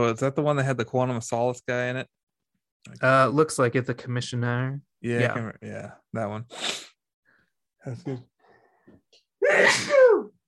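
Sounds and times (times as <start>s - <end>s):
speech: 0.0s - 2.2s, 2.8s - 6.9s, 7.8s - 8.3s, 9.4s - 10.3s
person sneezing: 9.4s - 10.3s.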